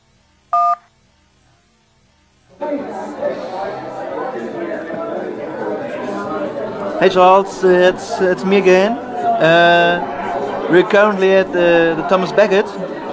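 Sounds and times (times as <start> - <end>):
telephone keypad beep: 0.5 - 0.8
crowd chatter in a busy pub from a voicemail: 2.2 - 13.1
speech: 7.0 - 10.1, 10.7 - 12.8.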